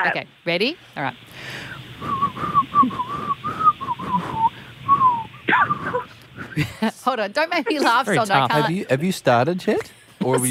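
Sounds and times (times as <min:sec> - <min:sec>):
speech: 0:00.0 - 0:03.4, 0:06.6 - 0:10.4
person whistling a wavering melody: 0:02.0 - 0:06.6.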